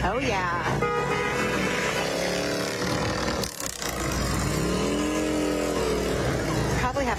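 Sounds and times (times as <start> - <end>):
speech: 0.1 - 1.2
motorcycles of a veterans' group roaring past, engines revving: 1.3 - 7.0.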